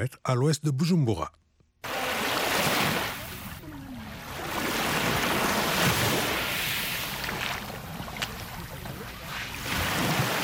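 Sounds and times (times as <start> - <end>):
speech: 0.0 - 1.4
morning small waves lapping on a lake beach: 1.8 - 10.4.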